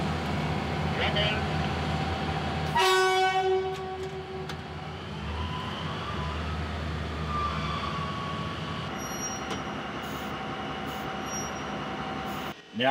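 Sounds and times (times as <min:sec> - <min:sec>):
work train pulled by two old 2600 hp diesel locomotives pulling away: 0:00.0 - 0:12.9
diesel locomotive horn blast: 0:02.7 - 0:04.5.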